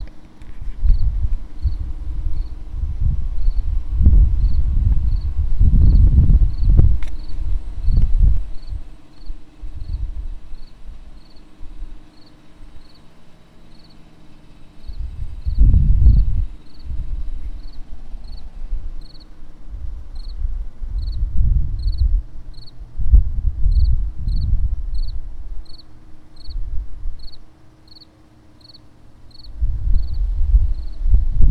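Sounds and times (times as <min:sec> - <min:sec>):
insect chirping: 0:00.8 - 0:22.8, 0:23.6 - 0:31.2.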